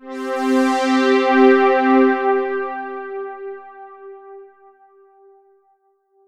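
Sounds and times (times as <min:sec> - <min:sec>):
Yamaha AN1x synthesizer string pad C5: 0:00.0 - 0:04.5.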